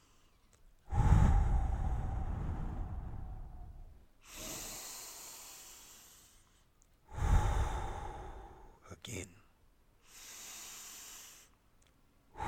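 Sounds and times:
slow deep human breathing during a guided breathing exercise: 0.0s - 8.9s, 10.0s - 11.6s.

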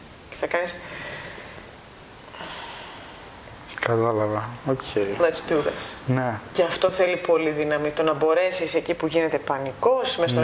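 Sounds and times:
speech: 0.4s - 1.1s, 3.9s - 10.4s
person breathing in through the nose: 0.8s - 1.7s, 2.3s - 3.4s.

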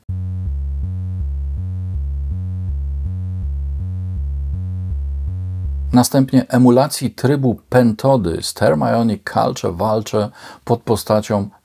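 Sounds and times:
slightly distorted synthesized sine-wave bass line: 0.0s - 6.3s
speech: 5.9s - 11.6s.

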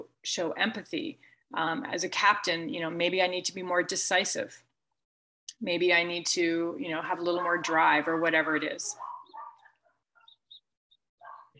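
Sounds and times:
speech: 0.2s - 4.7s, 5.6s - 9.1s
dog barking with short sharp yelps: 8.9s - 10.4s, 11.2s - 11.5s.

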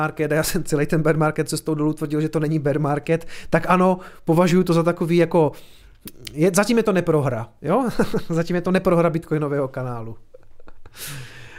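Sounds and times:
speech: 0.0s - 10.3s, 10.9s - 11.4s
quick intakes of breath: 5.6s - 6.0s, 10.9s - 11.5s
laughter: 7.9s - 8.4s.

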